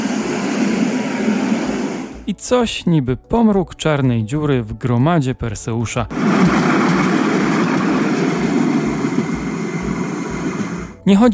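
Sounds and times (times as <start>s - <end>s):
tram rolling along the tracks in Kraków: 0.0s - 2.1s, 6.1s - 11.0s
speech: 2.4s - 6.6s, 11.1s - 11.3s.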